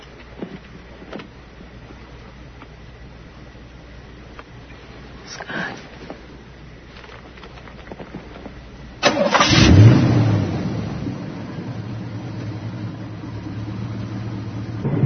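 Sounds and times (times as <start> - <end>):
car engine cranking and failing to start: 6.9 - 14.9.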